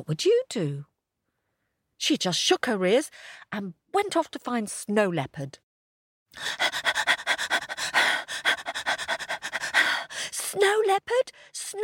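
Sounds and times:
speech: 0.0 - 0.9, 2.0 - 5.6, 6.3 - 7.1, 10.5 - 11.8
voice imitating out-of-breath panting: 6.4 - 10.4.

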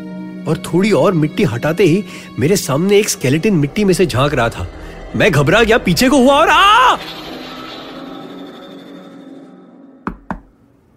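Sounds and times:
speech: 0.4 - 7.2
rumbling ambient drone: 0.6 - 10.7
person knocking on an office door: 10.1 - 10.5.

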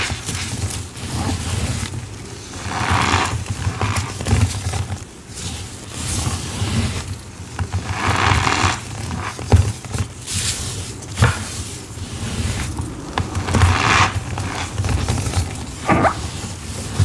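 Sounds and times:
cornstarch and gym chalk powder worked by hand, hissing and rustling: 0.0 - 17.0
sharp scrapes and pats: 0.0 - 17.0
low rumble: 11.8 - 16.5.

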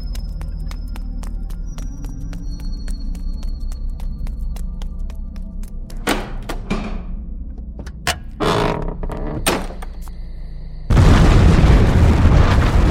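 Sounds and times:
abbey fire roaring and crackling: 10.9 - 12.8
heavy booming blasts of an abbey blown up by fuse and ether: 10.9 - 12.8.

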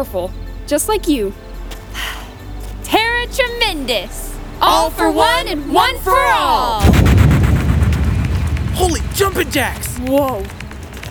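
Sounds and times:
speech: 0.0 - 1.4, 2.9 - 7.1, 8.8 - 10.6
sharp blast-like bursts: 5.1 - 10.3
loud explosion rumbling: 6.8 - 11.1.

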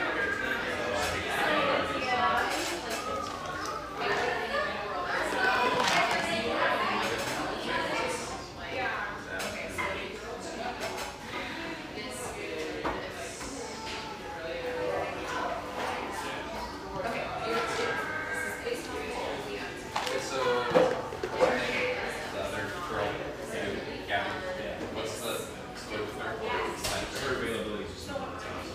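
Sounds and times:
many overlapping voices chattering in a surf-shack café: 0.0 - 28.7
dishes and cups clinking: 5.2 - 7.2.

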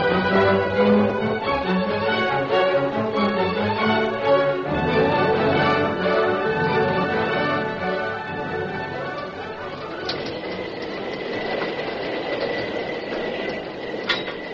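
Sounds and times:
fast-moving steam train thundering past with rumbling wheels and hissing machinery: 0.0 - 14.5
sharp metallic clanks from steam train: 9.0 - 14.5.

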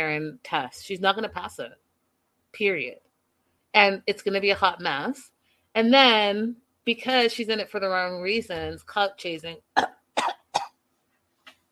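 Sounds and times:
speech: 0.0 - 1.8, 2.5 - 3.0, 3.7 - 10.0
fake theatrical cough: 9.8 - 10.7.

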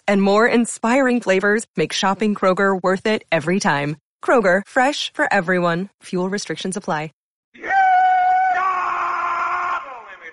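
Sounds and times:
speech: 0.1 - 7.7
man doing a rebel yell: 7.6 - 10.3.

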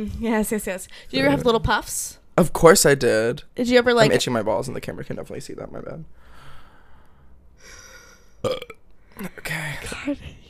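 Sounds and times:
speech: 0.0 - 6.3, 8.4 - 10.4
man burping: 8.4 - 8.8.

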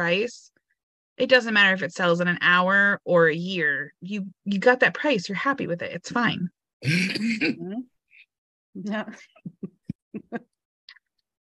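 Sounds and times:
speech: 0.0 - 0.6, 1.2 - 7.9, 8.8 - 10.5
person coughing and clearing throat: 6.8 - 7.6.

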